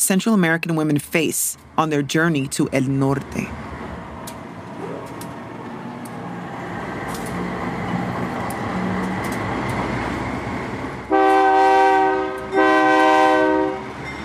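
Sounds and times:
speech: 0:00.0 - 0:03.7
freight train rolling along the tracks: 0:00.0 - 0:14.2
freight train horn blasts: 0:11.1 - 0:14.0.

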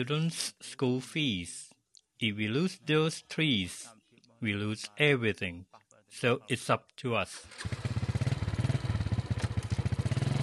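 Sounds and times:
speech: 0:00.0 - 0:07.8
motorcycle engine idling: 0:07.5 - 0:10.4.

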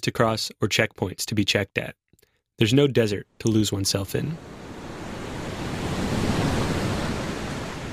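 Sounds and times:
speech: 0:00.0 - 0:02.0, 0:02.6 - 0:04.6
ocean waves and rushing surf: 0:04.3 - 0:07.9.

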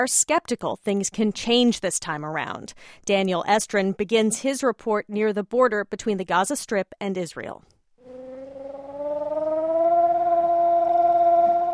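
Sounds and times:
speech: 0:00.0 - 0:07.7
boy vocally imitating a rocket warning siren with cupped hands: 0:08.0 - 0:11.7.

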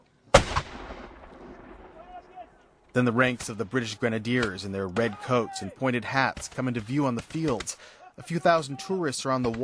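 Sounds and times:
warning gunshot fired from the bastions of a fort during a battle reenactment: 0:00.3 - 0:02.2
speech: 0:03.0 - 0:09.6.

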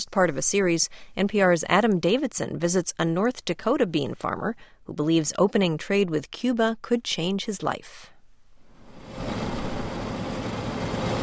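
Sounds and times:
speech: 0:00.0 - 0:08.1
massive combine harvester engine roaring in a field of great northern beans: 0:09.0 - 0:11.2.

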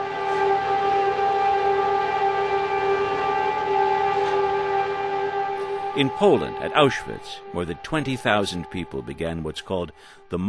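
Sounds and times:
air raid siren blaring in Israel for Holocaust victims: 0:00.0 - 0:10.4
speech: 0:06.0 - 0:10.4.

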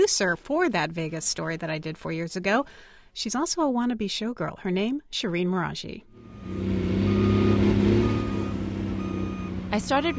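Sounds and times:
speech: 0:00.0 - 0:07.0, 0:09.7 - 0:10.1
bulldozer engines rumbling: 0:06.1 - 0:10.1
bulldozer reversing beep: 0:06.4 - 0:10.1.

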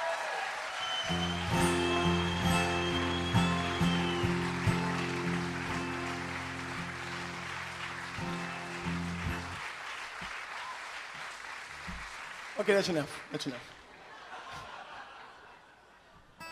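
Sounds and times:
crowd applauding the speaker's father: 0:00.0 - 0:15.5
speech: 0:01.1 - 0:01.8, 0:12.7 - 0:13.8
laughter: 0:13.9 - 0:16.2.

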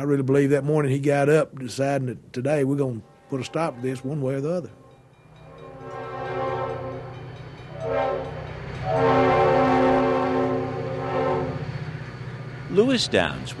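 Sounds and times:
speech: 0:00.0 - 0:04.8, 0:12.7 - 0:13.5
train cars rumbling past in Athens Alabama: 0:00.0 - 0:13.5
train horn sounding in long harmonic blasts in Athens Alabama: 0:03.0 - 0:12.0.

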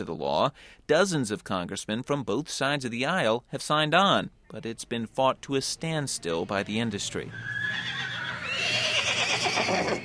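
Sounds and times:
speech: 0:00.0 - 0:08.0, 0:09.6 - 0:10.0
horses neighing and whinnying during final paces before competition: 0:07.3 - 0:10.0.

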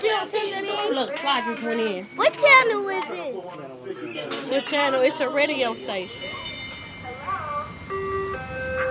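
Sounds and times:
speech: 0:00.2 - 0:06.6
ice cream truck chiming jingle: 0:05.2 - 0:08.8.

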